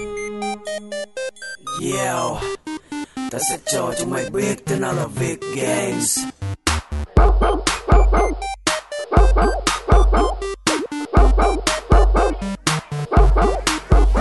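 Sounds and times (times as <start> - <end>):
speech: 1.8 - 2.6, 3.3 - 6.3
dog barking: 7.2 - 8.3, 9.1 - 10.3, 11.2 - 12.4, 13.1 - 14.1.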